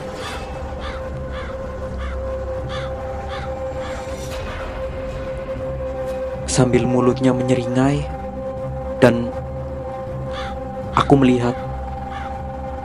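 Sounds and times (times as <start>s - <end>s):
crow cawing: 0.0s - 6.4s, 9.6s - 12.8s
speech: 6.6s - 8.2s, 9.0s - 9.3s, 11.1s - 11.7s.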